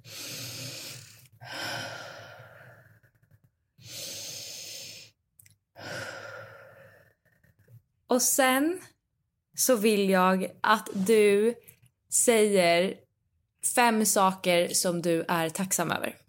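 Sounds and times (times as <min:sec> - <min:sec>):
deep breaths with sighing exhales: 0:00.0 - 0:07.6
speech: 0:08.1 - 0:08.9, 0:09.6 - 0:13.0, 0:13.6 - 0:16.2.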